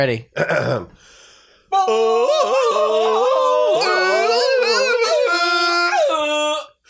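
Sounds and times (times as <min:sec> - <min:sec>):
speech: 0:00.0 - 0:03.3
several voices imitating a Tarzan yell: 0:01.8 - 0:06.6.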